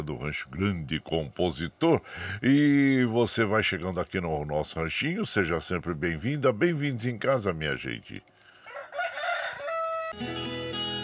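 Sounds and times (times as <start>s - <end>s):
speech: 0.0s - 8.3s, 10.2s - 10.8s
rooster crowing: 8.6s - 10.3s.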